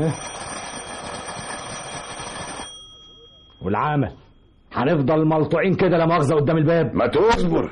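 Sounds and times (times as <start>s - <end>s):
speech: 0.0s - 0.4s, 3.6s - 7.6s
apartment electric doorbell ringing: 0.0s - 3.8s
faint noise: 0.0s - 7.6s.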